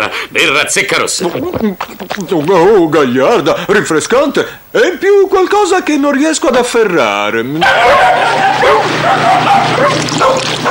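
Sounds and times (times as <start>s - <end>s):
speech: 0.0s - 10.6s
steady low hum: 0.0s - 10.6s
dog barking and yipping: 7.6s - 10.6s.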